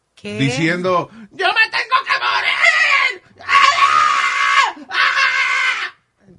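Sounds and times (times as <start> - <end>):
speech: 0.2 - 1.6
woman in her twenties screaming on an airplane flight: 2.1 - 6.0.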